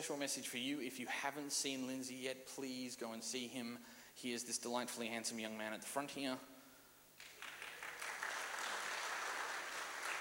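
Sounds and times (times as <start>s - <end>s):
speech: 0.0s - 6.6s
conference audience applause in Australia: 7.2s - 10.2s.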